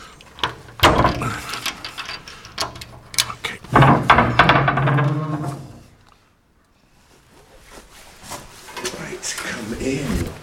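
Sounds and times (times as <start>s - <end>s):
heavy very old crypt door dragged open with a grinding creaking scrape: 0.4s - 6.0s.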